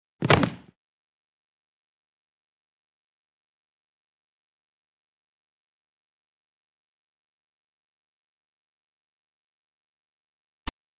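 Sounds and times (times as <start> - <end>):
fight sounds: 0.2 - 0.7.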